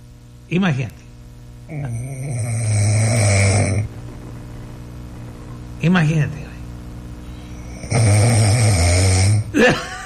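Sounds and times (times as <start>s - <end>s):
speech: 0.5s - 1.0s, 1.7s - 2.6s, 5.8s - 6.4s, 9.5s - 10.0s
man snoring in his sleep: 1.7s - 3.9s, 7.5s - 9.7s.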